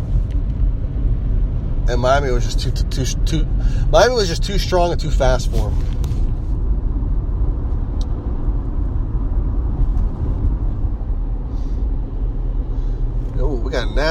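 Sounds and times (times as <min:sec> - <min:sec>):
engines idling: 0:00.0 - 0:14.0
steady low road rumble: 0:00.0 - 0:14.0
speech: 0:01.9 - 0:06.1, 0:13.7 - 0:14.0
hiss of brakes: 0:01.9 - 0:06.8, 0:09.6 - 0:14.0.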